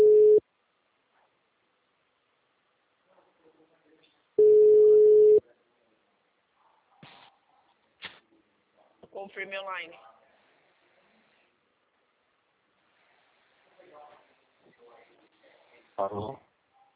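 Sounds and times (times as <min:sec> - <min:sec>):
single-pitched telephone ringback tone while dialing on air: 0:00.0 - 0:00.4, 0:04.4 - 0:05.4
speech: 0:09.3 - 0:10.1, 0:16.0 - 0:16.4.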